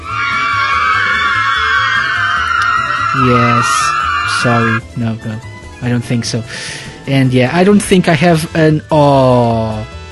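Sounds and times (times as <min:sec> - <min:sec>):
loud high-pitched crowd of fans screaming: 0:00.0 - 0:04.8
speech: 0:03.2 - 0:09.9.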